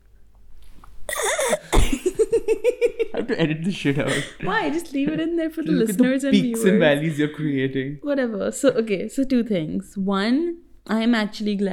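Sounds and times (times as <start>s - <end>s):
coughing into the microphone: 1.1s - 2.3s
laughter: 1.2s - 7.9s
speech: 3.2s - 11.7s.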